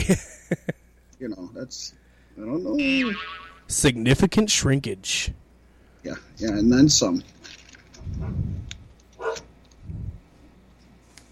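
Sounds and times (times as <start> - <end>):
speech: 0.1 - 0.7, 1.6 - 5.4, 6.0 - 7.4
female dog with a sharper bark-like yelp: 9.2 - 9.5.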